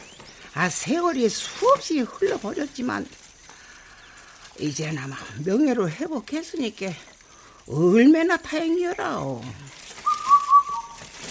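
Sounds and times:
speech: 0.6 - 3.2, 4.6 - 7.1, 7.7 - 9.8
bird singing whistle-like notes: 10.0 - 11.0.

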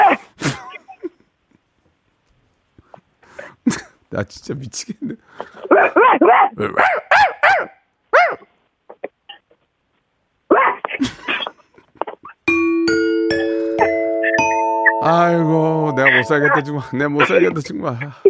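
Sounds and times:
person imitating an angry dog with yappy barks: 0.0 - 0.9, 5.7 - 8.4, 10.5 - 11.0
speech: 3.7 - 7.0, 15.1 - 18.2
bright electronic jingle: 12.5 - 17.6.

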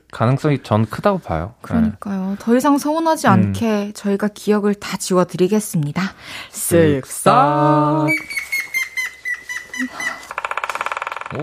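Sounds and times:
speech: 0.1 - 8.4
high chirping twittering: 8.0 - 10.4
woodpecker drumming: 8.1 - 11.4.

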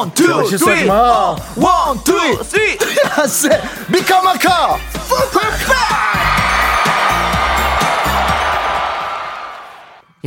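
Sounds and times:
speech: 0.0 - 6.4
crowd cheering: 5.6 - 10.1.

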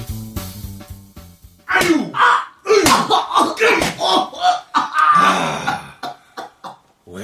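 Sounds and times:
fist punches: 1.7 - 2.1, 2.7 - 4.0
man groaning and crying out in pain: 1.7 - 6.1.

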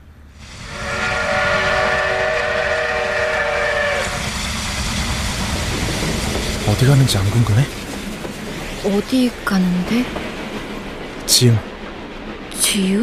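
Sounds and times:
heavy rumble and hiss of a steam train: 0.0 - 13.0
loud sustained train steam whistle: 0.4 - 4.6
speech: 6.8 - 7.8, 8.8 - 10.3, 11.3 - 11.7, 12.6 - 13.0.

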